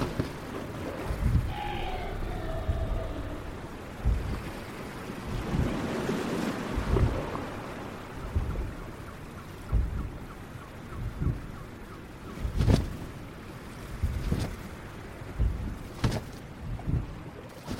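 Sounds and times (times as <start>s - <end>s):
ocean waves rumbling: 0.0s - 17.7s
soft wavering dragon-like cry: 1.4s - 3.8s.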